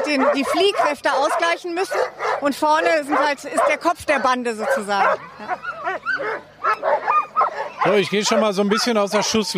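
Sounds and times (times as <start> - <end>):
excited sled dogs barking, yipping and howling before being harnessed: 0.0 - 9.5
speech: 0.1 - 6.5, 7.8 - 9.5.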